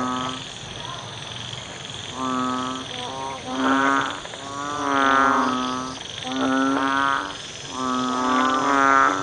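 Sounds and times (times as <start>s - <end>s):
banded bullfrog calls: 0.0s - 9.2s.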